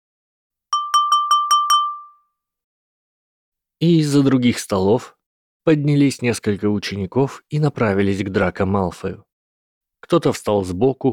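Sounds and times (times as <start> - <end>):
spoon tapping a drinking glass at a dining table in a great hall: 0.8 - 2.2
speech: 3.8 - 9.3, 10.0 - 11.1.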